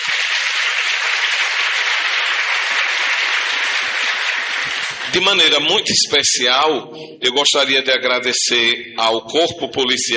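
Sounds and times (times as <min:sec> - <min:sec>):
audience applause at a public event: 0:00.0 - 0:05.7
speech: 0:05.2 - 0:10.1.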